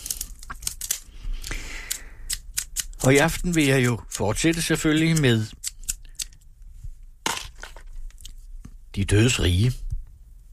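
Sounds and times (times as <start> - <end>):
scissors cutting a material that could fray: 0.0 - 6.4
speech: 3.0 - 5.6, 9.0 - 9.8.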